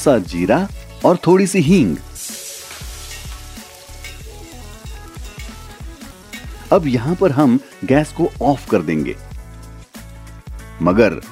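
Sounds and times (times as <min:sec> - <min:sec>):
speech: 0:00.0 - 0:02.1, 0:06.7 - 0:09.3, 0:10.8 - 0:11.2
louder backing track of rhythmic music: 0:00.0 - 0:11.2
mustard seeds and black peppercorns crackling and sizzling in hot oil: 0:01.7 - 0:10.3.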